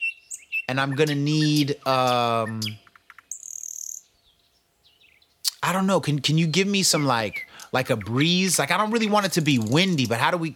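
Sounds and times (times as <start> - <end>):
birds chirping in a backyard: 0.0 - 10.5
speech: 0.7 - 2.9, 5.6 - 10.5.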